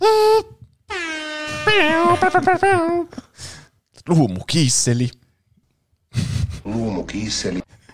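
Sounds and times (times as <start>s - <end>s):
voice imitating an air horn: 0.9s - 2.8s
speech: 1.8s - 3.2s, 4.0s - 5.2s, 6.7s - 7.6s.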